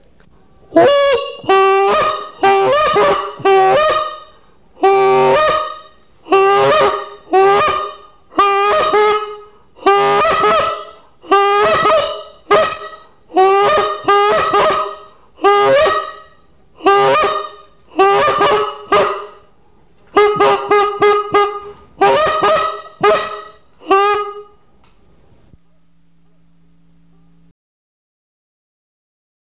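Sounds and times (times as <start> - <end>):
goose call: 0.8 - 19.4, 20.1 - 24.5.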